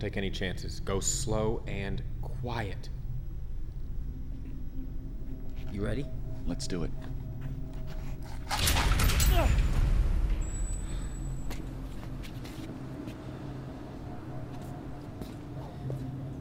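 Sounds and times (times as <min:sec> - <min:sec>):
speech: 0:00.0 - 0:03.0, 0:05.7 - 0:07.2
low steady ambient rumble: 0:00.0 - 0:16.4
door swinging open with a creaking scrape: 0:08.4 - 0:12.2.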